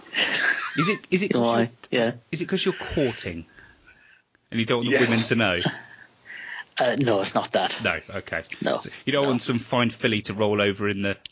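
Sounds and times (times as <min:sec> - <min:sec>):
laughter: 0:00.1 - 0:01.1, 0:04.9 - 0:05.8
speech: 0:00.8 - 0:03.6, 0:04.5 - 0:05.8, 0:06.8 - 0:11.3
heavy rasping breathing with wheezy gasps: 0:02.7 - 0:04.3, 0:05.0 - 0:06.8.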